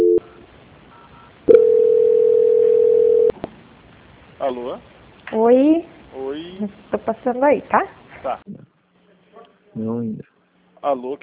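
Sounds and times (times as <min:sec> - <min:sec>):
telephone line beep during a call transfer: 0:00.0 - 0:00.3, 0:00.9 - 0:03.3
quiet telephone line hiss: 0:00.0 - 0:03.3
speech: 0:04.5 - 0:08.7, 0:09.8 - 0:11.2.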